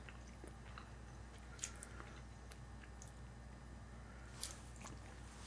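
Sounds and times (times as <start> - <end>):
cheese being chewed: 0.0 - 3.2, 4.4 - 5.3.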